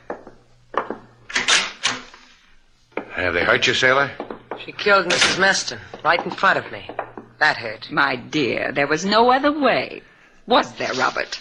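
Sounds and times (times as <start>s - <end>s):
door latch clicks: 1.3s - 2.1s
speech: 3.2s - 11.3s.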